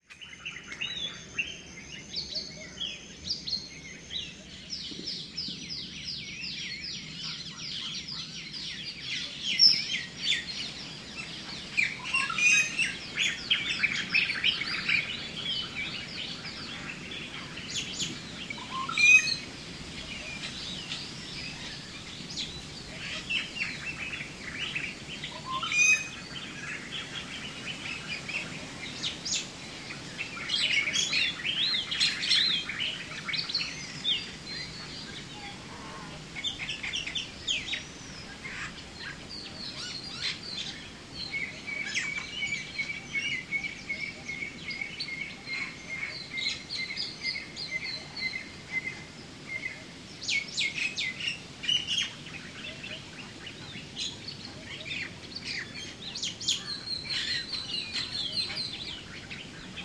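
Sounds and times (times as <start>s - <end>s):
morning soundscape: 0.1s - 59.8s.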